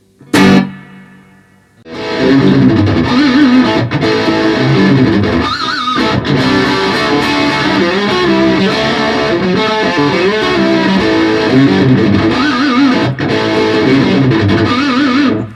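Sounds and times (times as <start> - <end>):
overdriven electric guitar through a tube amp with reverb: 0.0 - 15.5.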